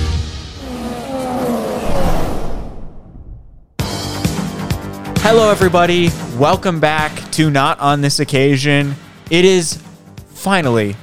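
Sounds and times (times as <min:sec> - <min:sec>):
loud dense crowd roaring at a motor race: 0:00.6 - 0:03.0
speech: 0:05.3 - 0:09.8, 0:10.4 - 0:11.0.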